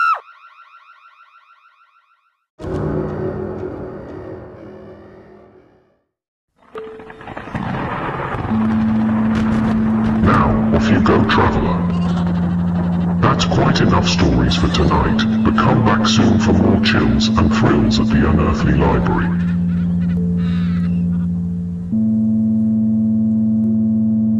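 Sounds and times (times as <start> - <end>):
loud electronic alarm: 0.2 - 6.0, 8.5 - 24.3
low sustained drone: 2.6 - 6.0, 6.8 - 24.3
rumbling noise: 6.7 - 22.6
speech: 14.0 - 19.5.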